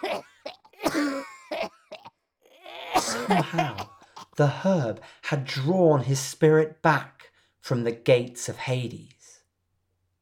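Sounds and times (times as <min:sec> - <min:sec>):
boy coughing, choking and spluttering: 0:00.0 - 0:04.4
speech: 0:03.3 - 0:09.2.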